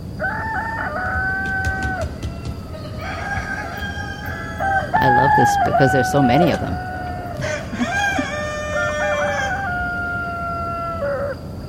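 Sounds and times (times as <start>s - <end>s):
steady outdoor hiss: 0.0s - 11.6s
rooster crowing: 0.1s - 11.6s
speech: 5.4s - 6.9s.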